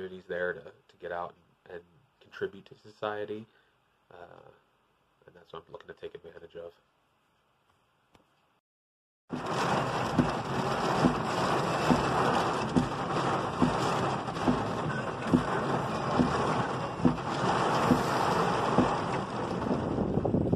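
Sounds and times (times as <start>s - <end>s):
speech: 0.1s - 4.6s, 5.3s - 6.9s
heavy rain pouring: 9.3s - 20.5s.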